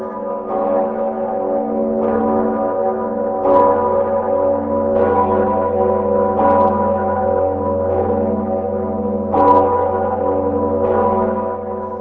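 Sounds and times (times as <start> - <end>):
historic cathedral bells ringing in Prague Czech Republic: 0.0 - 11.9.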